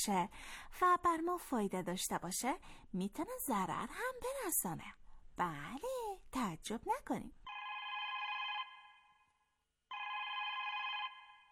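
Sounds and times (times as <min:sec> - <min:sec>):
speech: 0:00.0 - 0:07.4
telephone ringing: 0:07.5 - 0:09.2, 0:09.9 - 0:11.5.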